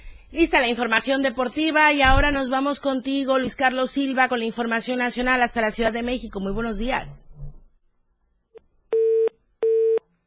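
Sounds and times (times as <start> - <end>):
speech: 0.3 - 7.3
telephone busy signal after a dropped call on a phone link: 9.0 - 10.0.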